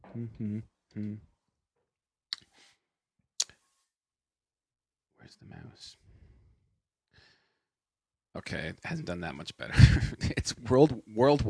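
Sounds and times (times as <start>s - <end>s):
murmured voice: 0.0s - 1.2s
speech: 0.2s - 1.3s, 5.2s - 6.1s, 8.4s - 11.4s.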